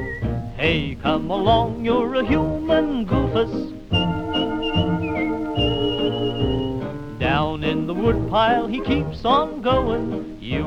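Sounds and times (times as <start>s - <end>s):
person whistling a bright wavering tune: 0.0s - 0.4s, 3.9s - 6.9s
instrumental accompaniment with rhythmic plucked accents: 0.0s - 10.6s
speech: 0.6s - 3.8s, 7.9s - 10.6s.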